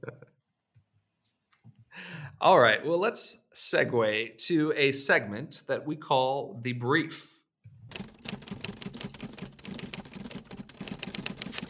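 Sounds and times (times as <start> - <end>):
speech: 2.4 - 7.4
old Underwood manual typewriter typing a brief: 7.9 - 11.6.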